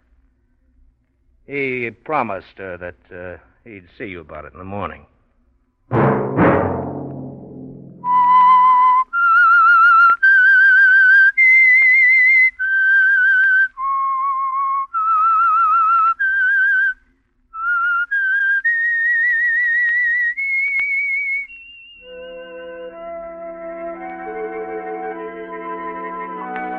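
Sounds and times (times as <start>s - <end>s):
speech: 1.5s - 5.1s
clear solo whistle carrying a slow eerie melody of long held notes: 8.0s - 26.7s
sustained orchestral music: 22.0s - 26.7s.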